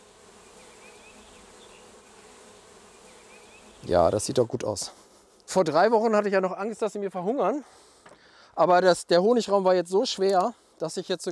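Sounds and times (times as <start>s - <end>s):
honeybees buzzing around a beehive: 0.0s - 8.0s
speech: 3.8s - 7.8s, 8.6s - 11.3s.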